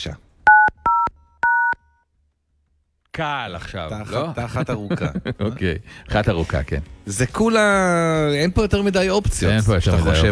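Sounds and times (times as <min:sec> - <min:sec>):
speech: 0:00.0 - 0:00.2, 0:03.2 - 0:10.3
dual-pitched keypad tones on a new mobile phone: 0:00.5 - 0:01.8
laughter: 0:03.9 - 0:06.8, 0:09.3 - 0:10.3.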